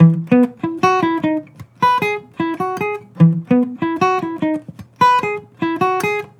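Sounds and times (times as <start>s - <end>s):
acoustic melody loop in E major: 0.0s - 6.3s.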